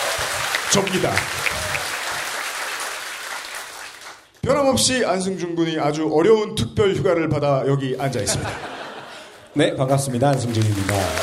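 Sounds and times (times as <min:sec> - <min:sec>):
live audience applause: 0:00.0 - 0:04.3, 0:10.0 - 0:11.2
speech: 0:00.7 - 0:01.6, 0:04.4 - 0:08.8, 0:09.6 - 0:11.2
laughter: 0:08.1 - 0:09.6, 0:10.5 - 0:11.2.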